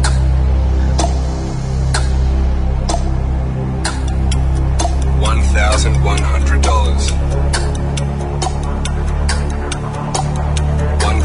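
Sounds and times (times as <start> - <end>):
low steady drone: 0.0 - 11.2
countdown clock ticking for a cash bomb game: 3.8 - 11.2.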